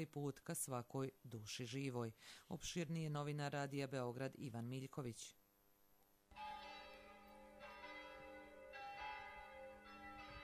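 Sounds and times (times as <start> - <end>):
speech: 0.0 - 5.4
monastery church bells pealing on Christmas Eve morning: 6.3 - 10.4.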